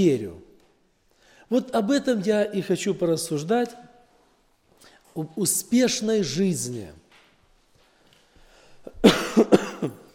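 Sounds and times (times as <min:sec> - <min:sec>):
speech: 0:00.0 - 0:00.4, 0:01.5 - 0:03.9, 0:05.2 - 0:07.0
man coughing from a lingering illness: 0:08.9 - 0:10.1.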